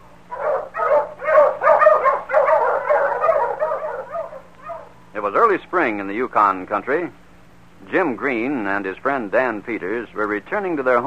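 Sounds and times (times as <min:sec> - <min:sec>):
dog barking excitedly: 0:00.3 - 0:05.0
speech: 0:05.4 - 0:07.2, 0:07.8 - 0:11.0.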